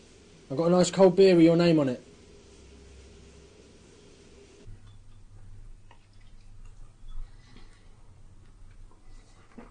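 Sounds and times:
speech: 0.5 - 2.1
small scattered water drips and ticks: 5.9 - 7.0.

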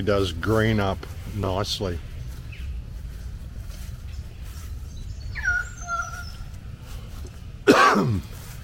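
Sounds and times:
speech: 0.0 - 2.1
low outdoor rumble: 0.0 - 8.6
faint bird whistles: 4.9 - 6.5
harsh cough: 7.6 - 8.3.

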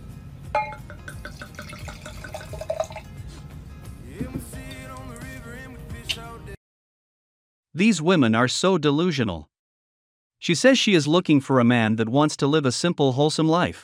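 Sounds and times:
glasses clinking in a toast: 0.6 - 3.1, 4.3 - 5.2
liquid sloshing and pouring: 0.8 - 3.2
speech: 7.8 - 9.5, 10.4 - 13.8.

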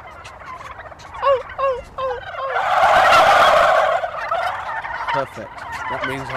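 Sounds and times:
wild male turkeys gobbling: 0.0 - 6.3
person imitating female turkey yelping calls: 1.2 - 4.2
speech: 5.2 - 6.3.

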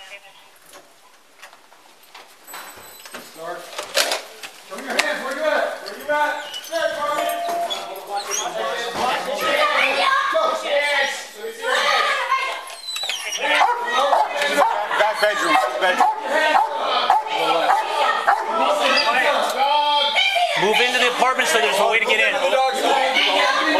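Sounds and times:
speech: 0.2 - 0.9
agitated human voices: 4.6 - 23.7
dog barking and yelping excitedly: 12.1 - 19.1.

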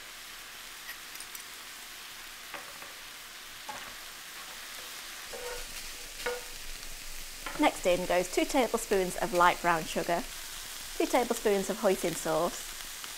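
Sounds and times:
minced garlic and thinly sliced red chilli sizzling in a pan: 0.0 - 13.1
soft scraping stirs in a pan: 2.6 - 7.7
speech: 7.6 - 10.4, 11.0 - 12.7.

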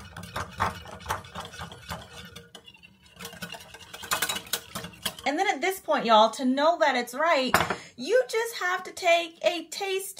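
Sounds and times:
whisk beating ground garlic into a mixture with maple syrup: 0.0 - 5.3
speech: 5.3 - 10.1.

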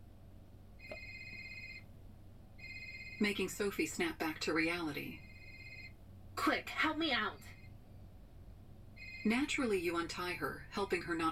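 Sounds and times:
low hum: 0.0 - 11.3
electronic telephone ringing in another room: 0.8 - 1.9, 2.6 - 3.4, 5.1 - 6.0, 9.0 - 9.6
speech: 3.2 - 5.3, 6.4 - 7.6, 9.2 - 11.3.

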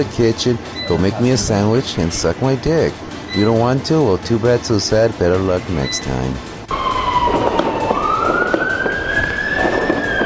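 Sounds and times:
speech: 0.0 - 6.5
police siren wailing: 6.7 - 10.2.

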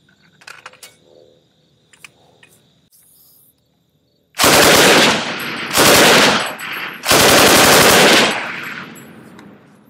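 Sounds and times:
FG-42 German paratrooper rifle firing full auto: 4.4 - 9.1.

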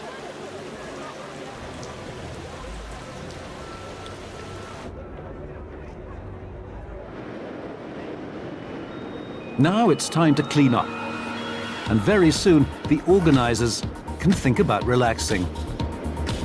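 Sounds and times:
steady rain pattering on a bridge in Sydney: 0.0 - 4.9
faint indistinct voices: 0.0 - 8.6
speech: 9.6 - 11.0, 11.9 - 15.7.

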